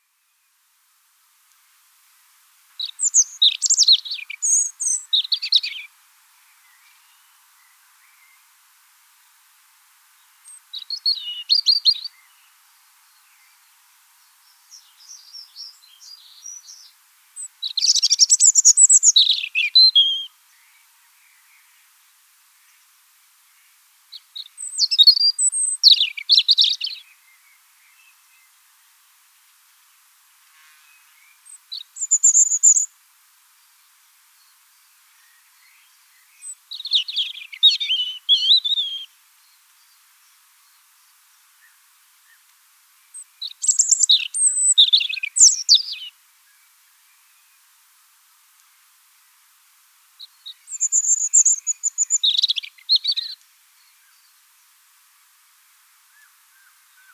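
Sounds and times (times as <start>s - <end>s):
European robin singing in Wiesloch: 2.8s - 8.5s, 10.2s - 21.9s, 23.6s - 28.6s, 30.9s - 32.9s, 33.6s - 42.5s, 43.1s - 47.7s, 50.2s - 54.4s.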